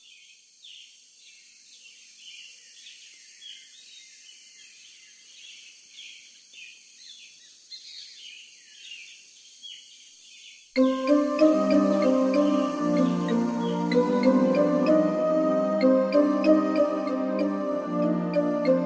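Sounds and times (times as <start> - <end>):
faint hiss of insects or noise: 0.0 - 18.8
European robin singing high warbling phrases: 10.8 - 18.8.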